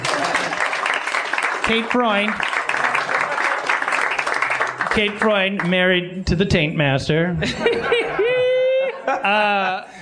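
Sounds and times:
laughter: 0:00.0 - 0:00.8, 0:07.4 - 0:10.0
audience applause: 0:00.0 - 0:05.7
speech: 0:01.7 - 0:02.5, 0:05.0 - 0:08.0, 0:09.2 - 0:10.0
person whooping in the crowd: 0:08.2 - 0:09.8.

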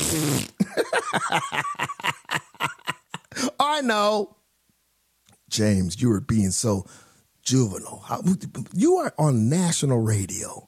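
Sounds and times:
raspy fart sound effect: 0:00.0 - 0:00.6
speech: 0:00.1 - 0:02.4, 0:03.7 - 0:04.4, 0:05.5 - 0:10.6.

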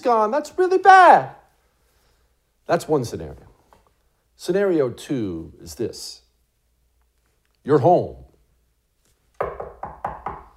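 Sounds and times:
speech: 0:00.0 - 0:01.4, 0:02.7 - 0:03.5, 0:04.4 - 0:06.2, 0:07.6 - 0:08.3
firm knocks on a wooden door: 0:09.4 - 0:10.5.

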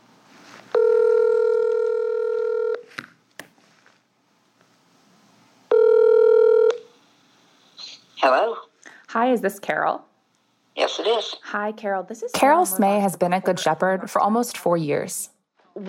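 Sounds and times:
phone call to a cell phone ringing tone: 0:00.7 - 0:02.9, 0:05.7 - 0:06.9
speech: 0:09.1 - 0:10.1, 0:10.8 - 0:15.8.

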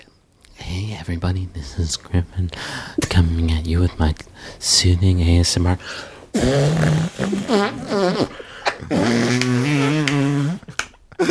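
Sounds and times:
speech: 0:00.7 - 0:11.3
arm fart noises made with a hand pressed against an armpit: 0:06.4 - 0:10.9.

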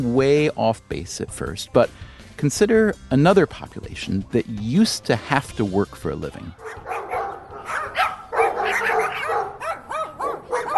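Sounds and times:
speech: 0:00.0 - 0:07.0
dog barking: 0:06.6 - 0:10.7.

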